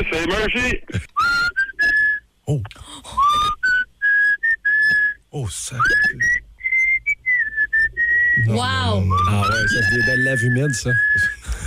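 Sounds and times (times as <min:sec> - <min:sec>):
speech: 0:00.2 - 0:01.1, 0:02.5 - 0:03.1, 0:05.3 - 0:06.4, 0:08.4 - 0:11.4
person whistling a melody: 0:01.2 - 0:02.2, 0:03.1 - 0:05.2, 0:05.8 - 0:11.6.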